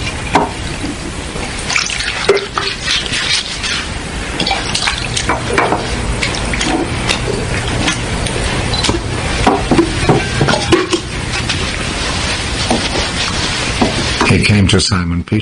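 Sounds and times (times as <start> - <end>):
water sloshing as something is washed in a basin: 0.0 - 14.4
water pouring into a wash basin: 1.4 - 5.5
speech: 14.5 - 15.4.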